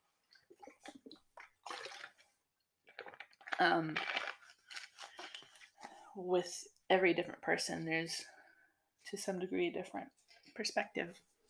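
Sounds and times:
person sipping water with wet gulps and swallows: 0.3 - 2.2, 2.9 - 5.9
speech: 3.6 - 4.2, 6.2 - 8.4, 9.1 - 11.3.

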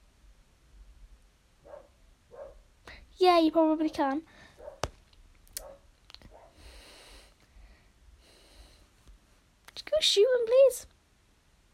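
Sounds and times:
dog barking in short yaps: 1.6 - 2.7, 4.6 - 4.8, 5.6 - 6.6
speech: 3.2 - 4.4, 10.0 - 10.9.

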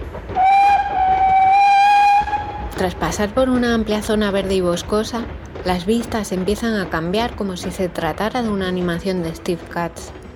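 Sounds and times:
rail cars rumbling and clattering: 0.0 - 10.3
train whistle on wide plains: 0.4 - 2.8
speech: 2.8 - 10.2.

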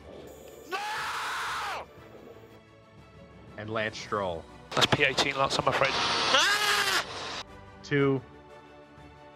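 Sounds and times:
racing driver screaming over radio transmission: 0.7 - 1.8
speech: 3.6 - 6.7, 7.9 - 8.4.

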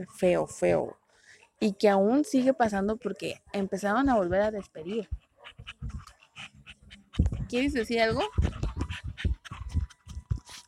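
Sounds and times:
speech: 0.0 - 1.0, 1.6 - 6.0, 7.2 - 8.5
dog panting: 2.2 - 10.6.

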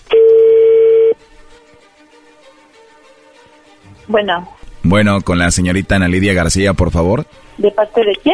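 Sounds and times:
telephone touch-tone beep from dialing a phone number: 0.1 - 1.2
speech: 4.1 - 8.3.

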